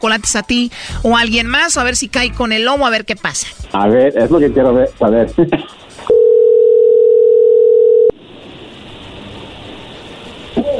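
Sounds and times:
speech: 0:00.0 - 0:05.8
telephone tone on a call being placed to Colombia: 0:06.1 - 0:08.2.

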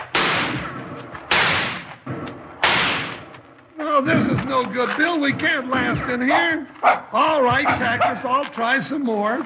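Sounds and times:
rifle shots in a western shootout around a covered wagon: 0:00.0 - 0:03.5
speech: 0:04.0 - 0:09.4.

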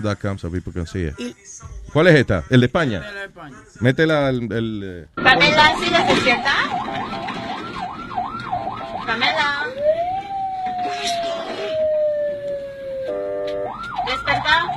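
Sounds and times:
speech: 0:00.0 - 0:06.9
ambulance siren wailing: 0:05.2 - 0:14.7.

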